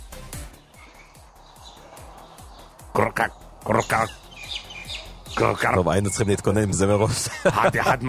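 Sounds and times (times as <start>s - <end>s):
dense chorus of frogs croaking: 0.5s - 7.6s
speech: 3.0s - 4.2s, 5.4s - 8.0s
laughter: 6.8s - 8.0s.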